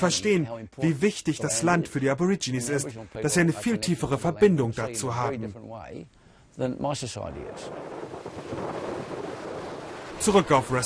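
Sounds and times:
speech: 0:00.0 - 0:08.0, 0:10.2 - 0:10.8
strong storm wind roaring against the microphone: 0:07.3 - 0:10.8.

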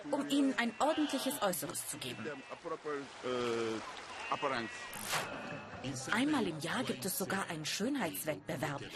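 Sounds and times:
speech: 0:00.0 - 0:08.9
sea water splashing while washing sheep: 0:01.9 - 0:05.5.

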